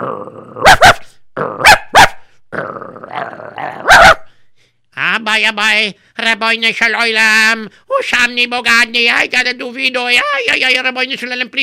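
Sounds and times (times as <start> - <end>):
dog growling aggressively: 0.0 - 0.8, 1.4 - 1.8, 2.5 - 4.0
dog barking aggressively: 0.6 - 2.2, 3.8 - 4.3
speech: 5.4 - 11.6.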